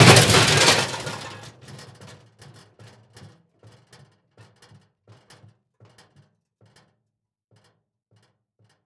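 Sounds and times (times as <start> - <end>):
metal object hitting cement: 0.0 - 1.6
metal object rocking on cement: 0.0 - 1.8.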